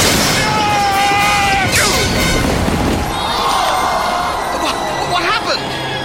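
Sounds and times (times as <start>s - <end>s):
chariot crash and splintering clatter: 0.0s - 3.2s
huge crowd roaring: 0.0s - 6.0s
voices shouting: 0.0s - 6.0s.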